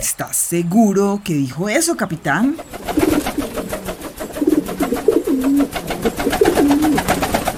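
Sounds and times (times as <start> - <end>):
speech: 0.0 - 3.5
steady rustling fluttery background: 2.4 - 7.5
carrier pigeon cooing in low throaty rolling phrases: 2.5 - 7.5.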